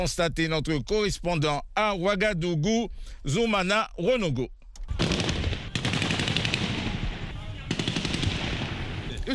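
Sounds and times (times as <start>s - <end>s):
speech: 0.0s - 4.6s
automatic weapons fired into the air by mutinous soldiers in Ouagadougou: 4.9s - 8.9s.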